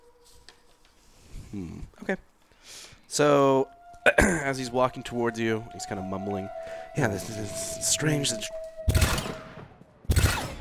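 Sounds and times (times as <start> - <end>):
speech: 1.5 - 8.6
loud booming gunshots with long decay: 8.9 - 10.5.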